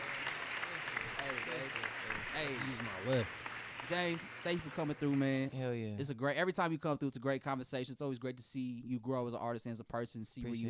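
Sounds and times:
people cheering: 0.0 - 5.5
small group clapping: 0.0 - 5.6
speech: 1.3 - 10.6.

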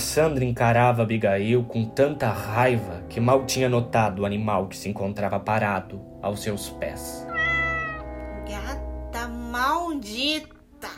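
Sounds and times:
speech: 0.2 - 7.3, 9.5 - 10.6
female cat meowing in a long wavering cry: 7.3 - 8.1.

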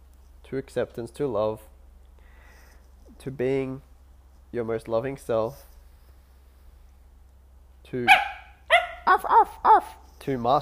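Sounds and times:
low steady hum: 0.0 - 10.5
speech: 0.5 - 1.7, 3.2 - 3.9, 4.5 - 5.7, 7.9 - 8.2, 10.3 - 10.5
dog barking: 8.1 - 10.0.

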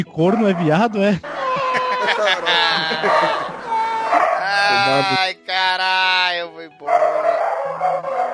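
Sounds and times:
speech: 0.0 - 1.3, 2.1 - 3.5, 4.5 - 7.0
dogs barking and yelping: 0.2 - 5.2, 6.8 - 8.3
laughter: 1.2 - 5.3.

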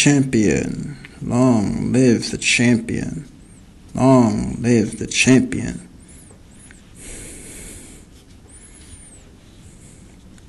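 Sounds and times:
speech: 0.0 - 3.3, 3.9 - 5.9
heavy noisy breathing with snorting breaths: 6.0 - 10.3.

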